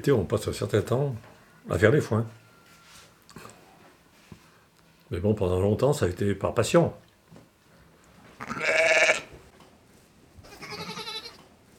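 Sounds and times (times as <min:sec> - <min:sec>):
speech: 0:00.0 - 0:02.4, 0:05.1 - 0:07.0
ewes bleating on a sheep farm in Saint-Chef: 0:08.4 - 0:09.3, 0:10.4 - 0:11.4.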